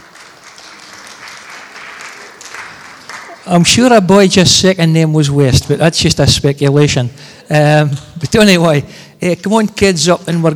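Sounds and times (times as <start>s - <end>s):
crowd applause: 0.0s - 3.8s
speech: 3.4s - 10.5s.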